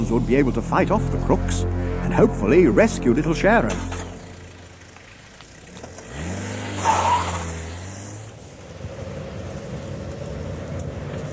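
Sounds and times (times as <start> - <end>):
car engine revving and rumbling while driving fast: 0.0 - 8.4
speech: 0.1 - 4.0.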